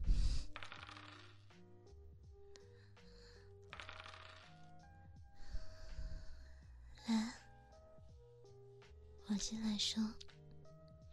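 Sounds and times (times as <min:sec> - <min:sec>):
soft music: 0:00.0 - 0:11.1
dice rattling in a shaken cup during a dice guessing game: 0:00.1 - 0:01.5, 0:03.7 - 0:04.7
speech: 0:09.3 - 0:10.3.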